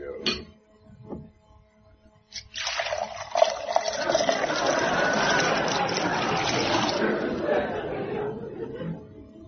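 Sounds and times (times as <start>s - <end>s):
whiskey being poured into a glass: 2.3s - 7.4s
laughter: 3.9s - 9.4s.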